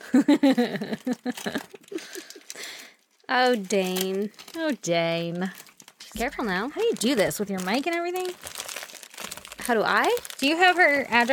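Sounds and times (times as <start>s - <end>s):
speech: 0.1s - 1.6s, 3.3s - 8.6s, 9.7s - 11.3s
packing tape and cardboard ripping as a heavily taped package is torn open: 0.8s - 11.3s.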